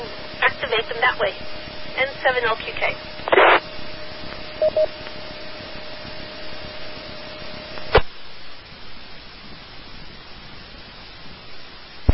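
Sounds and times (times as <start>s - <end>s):
faint static: 0.0s - 12.1s
speech: 0.7s - 3.6s, 4.6s - 5.1s
burst of noise: 1.3s - 11.4s
telephone speed dial dialing beeps: 4.6s - 4.9s
steady telephone tone: 4.6s - 5.0s.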